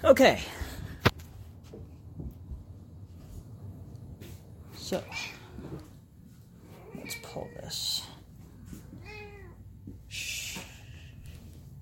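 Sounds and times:
speech: 0.0 - 0.6, 4.9 - 5.3
low hum: 0.0 - 11.8
cat meowing: 6.8 - 8.2, 9.0 - 9.6.

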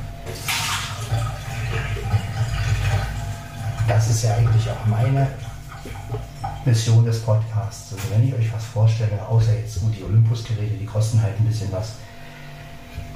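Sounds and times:
water being poured out: 0.3 - 7.5
speech: 4.1 - 5.5, 6.7 - 12.1.

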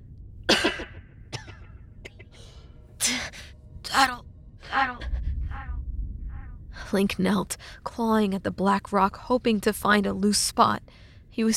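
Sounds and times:
rough raspy coughing: 0.5 - 2.4
speech: 3.1 - 5.1, 6.9 - 11.5.

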